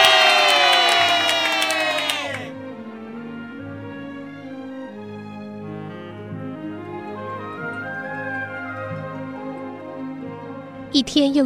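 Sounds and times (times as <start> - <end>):
crowd cheering for a king: 0.0 - 2.6
speech: 11.0 - 11.4.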